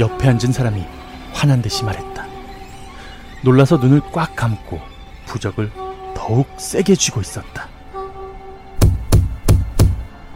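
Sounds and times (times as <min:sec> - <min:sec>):
speech: 0:00.0 - 0:02.1, 0:03.4 - 0:07.7
heavy banging on a glass window: 0:08.8 - 0:10.1.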